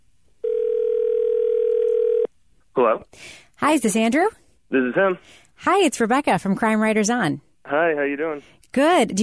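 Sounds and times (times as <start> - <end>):
telephone dial tone: 0.5 - 2.3
speech: 3.1 - 9.2.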